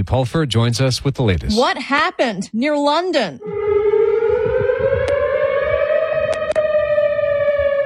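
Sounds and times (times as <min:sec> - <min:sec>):
speech: 0:00.0 - 0:03.9
outdoor tornado warning siren blaring: 0:03.4 - 0:07.8.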